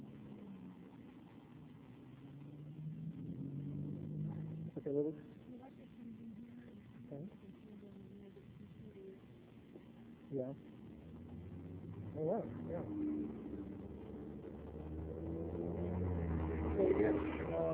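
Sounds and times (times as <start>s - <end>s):
hybrid electric gasoline car driving past: 0.0s - 5.6s, 10.6s - 17.7s.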